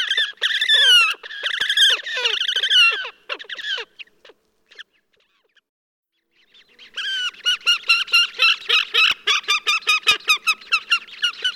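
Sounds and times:
horned grebe nasal squealing calls: 0:00.0 - 0:04.1, 0:06.6 - 0:11.5.

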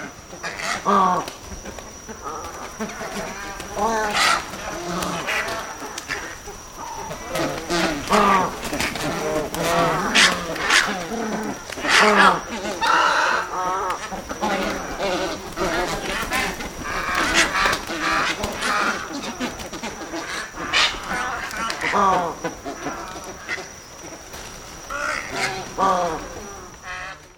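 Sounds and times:
flock of white ibis giving nasal honks and grunts: 0:00.0 - 0:27.3
speech: 0:00.8 - 0:01.4.

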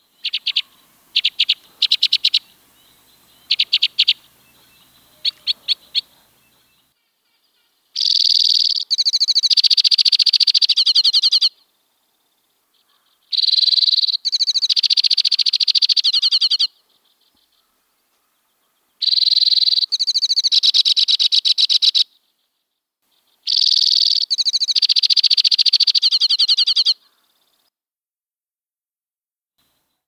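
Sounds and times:
white-winged crossbill calling: 0:00.0 - 0:06.9, 0:07.6 - 0:11.6, 0:12.7 - 0:22.1, 0:23.2 - 0:27.3.

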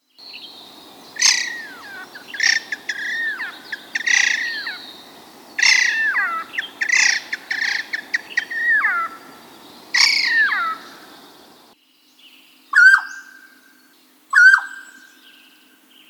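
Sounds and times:
Mountain Quail: 0:01.2 - 0:11.2.

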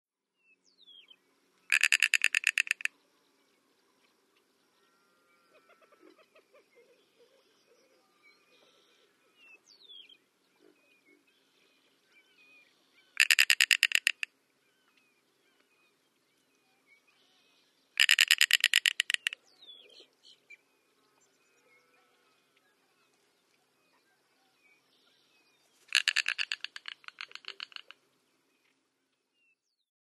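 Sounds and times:
snail kite calling: 0:01.7 - 0:02.9, 0:13.1 - 0:14.3, 0:18.0 - 0:20.5, 0:25.9 - 0:28.0.

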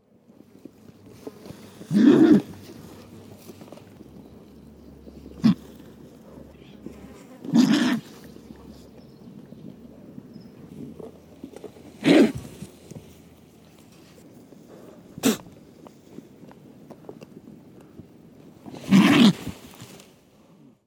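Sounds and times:
California Condor calling: 0:01.1 - 0:12.8.

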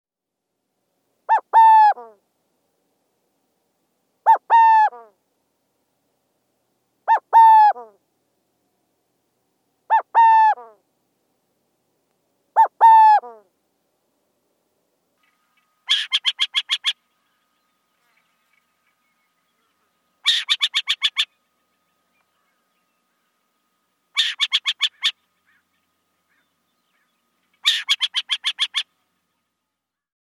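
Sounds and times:
burrowing owl calling: 0:01.3 - 0:02.2, 0:04.2 - 0:05.2, 0:07.0 - 0:08.0, 0:09.9 - 0:10.8, 0:12.6 - 0:13.5, 0:15.8 - 0:17.0, 0:20.2 - 0:21.4, 0:24.1 - 0:29.0.

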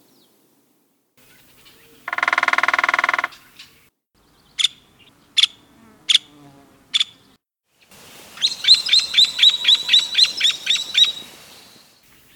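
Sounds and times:
Nuttall's woodpecker giving sharp high single notes: 0:01.2 - 0:03.8, 0:08.4 - 0:12.3.

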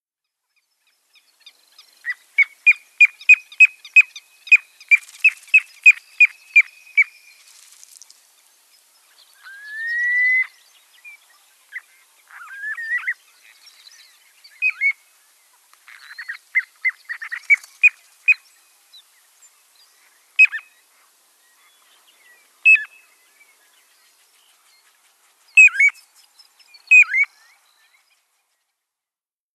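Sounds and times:
Piping Plover calls: 0:02.0 - 0:07.4, 0:11.7 - 0:15.0, 0:15.9 - 0:18.5, 0:20.4 - 0:20.8, 0:22.6 - 0:23.1, 0:25.6 - 0:26.1, 0:26.7 - 0:28.0.

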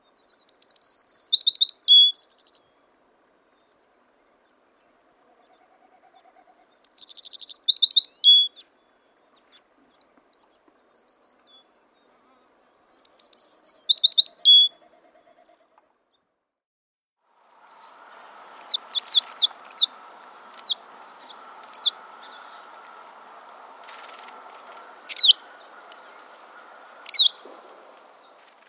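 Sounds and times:
American Tree Sparrow calling: 0:00.2 - 0:02.6, 0:05.4 - 0:08.7, 0:12.8 - 0:15.8, 0:17.8 - 0:28.6.

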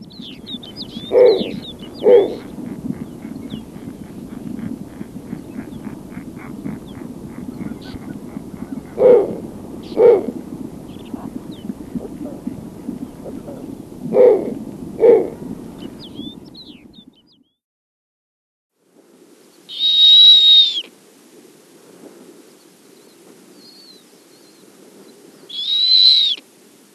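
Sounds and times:
Snowy owl giving low short hoots: 0:00.0 - 0:15.5, 0:19.7 - 0:20.9, 0:25.5 - 0:26.4
background noise: 0:00.0 - 0:17.4, 0:18.8 - 0:26.9.

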